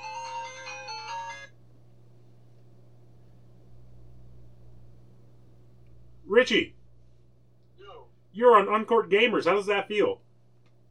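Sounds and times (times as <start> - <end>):
bright electronic phone ringtone for an incoming call: 0.0 - 1.6
steady low hum: 1.5 - 8.7
speech: 6.3 - 6.8, 8.4 - 10.2.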